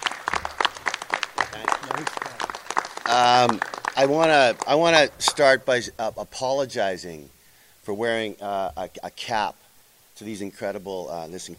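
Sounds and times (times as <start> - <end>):
audience applause: 0.0 - 5.6
speech: 1.6 - 2.4, 3.1 - 9.6, 10.2 - 11.5.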